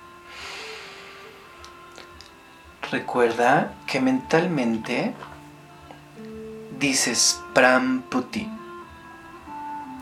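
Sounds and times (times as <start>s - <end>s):
slow inhaled breath during a guided breathing exercise: 0.3s - 1.4s
speech: 2.9s - 5.3s, 6.8s - 8.6s.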